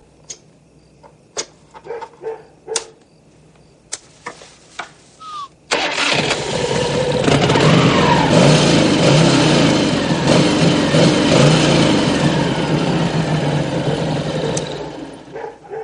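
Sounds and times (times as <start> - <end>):
motorcycle engine starting and revving: 5.7 - 15.4.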